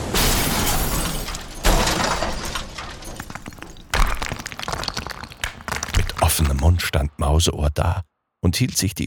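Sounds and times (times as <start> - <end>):
metal armor and gold piles crashing down: 0.0 - 4.6
speech: 6.4 - 9.0.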